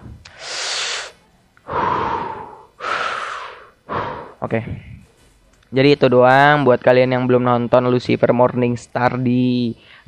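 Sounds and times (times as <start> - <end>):
deep heavy breaths: 0.0 - 5.0, 9.8 - 10.0
speech: 4.4 - 4.9, 5.7 - 10.0.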